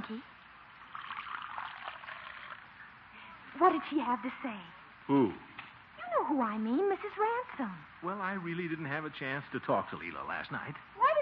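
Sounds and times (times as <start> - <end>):
speech: 0.1 - 0.4, 3.6 - 5.5, 6.2 - 11.1
coffee pouring into a cup: 0.8 - 2.8.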